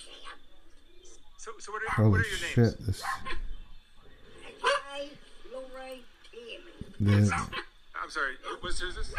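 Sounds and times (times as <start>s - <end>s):
speech: 1.6s - 3.3s, 7.0s - 9.1s
person imitating a dog barking: 7.0s - 7.6s.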